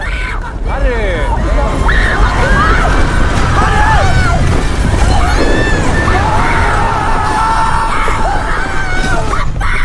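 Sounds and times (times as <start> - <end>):
crowd of people screaming as avalanche approaches restaurant: 0.0 - 9.8
dense rumbling roar: 0.0 - 9.8.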